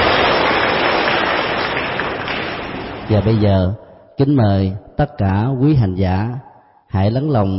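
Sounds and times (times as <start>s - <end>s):
crowd of Buddhist followers applauding to welcome a monk: 0.0s - 3.4s
speech: 3.1s - 7.5s.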